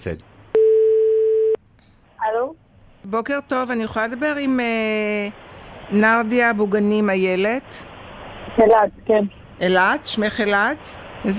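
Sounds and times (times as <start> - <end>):
speech: 0.0 - 0.3, 2.3 - 7.9, 8.6 - 11.3
telephone line tone while a phone call is placed: 0.6 - 1.6.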